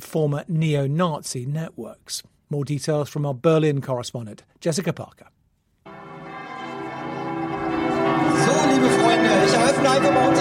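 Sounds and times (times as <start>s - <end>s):
speech: 0.1s - 5.4s, 9.8s - 10.3s
church bells pealing on a Sunday morning in Cottbus: 5.9s - 10.3s.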